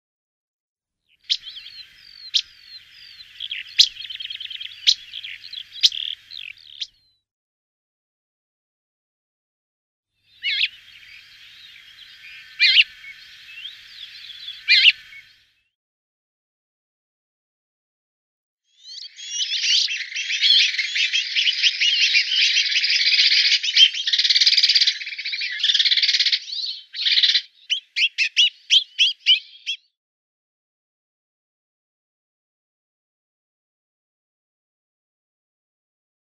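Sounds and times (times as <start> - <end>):
rock sparrow calls: 1.1 - 7.2, 10.3 - 15.4, 18.7 - 29.9.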